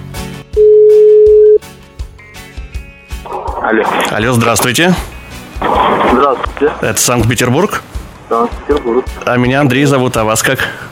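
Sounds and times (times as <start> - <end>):
steady telephone ringing tone: 0.6 - 1.6
speech: 3.7 - 5.1, 6.1 - 10.9.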